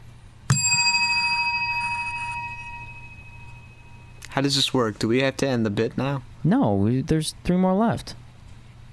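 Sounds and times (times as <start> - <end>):
bright bicycle bell ding: 0.5 - 4.2
speech: 4.4 - 8.2.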